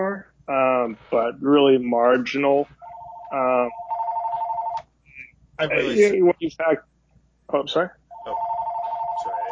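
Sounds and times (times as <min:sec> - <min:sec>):
speech: 0:00.9 - 0:03.8, 0:05.6 - 0:06.9, 0:07.5 - 0:08.0
telephone ringing with an electronic trill: 0:02.8 - 0:04.8, 0:08.1 - 0:09.4.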